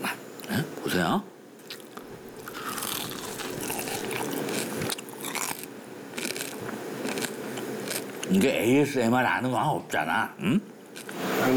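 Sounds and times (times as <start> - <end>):
speech: 0.5 - 1.4, 8.3 - 10.7
crispy Korean scorched rice crust nurungji being bitten and chewed: 1.6 - 8.4, 11.0 - 11.2.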